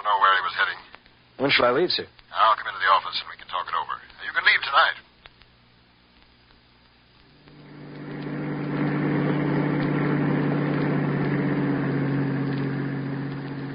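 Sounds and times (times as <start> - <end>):
speech: 1.4 - 5.1
bus engine running with a low rumbling drone: 7.5 - 13.7.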